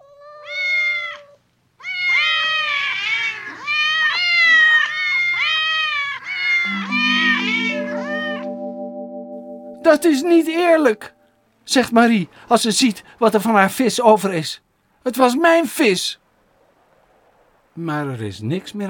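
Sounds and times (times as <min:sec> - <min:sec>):
several cats meowing while gobbling fish: 0:00.0 - 0:06.6
steady low tone: 0:06.7 - 0:11.2
speech: 0:10.0 - 0:16.2, 0:17.8 - 0:18.8.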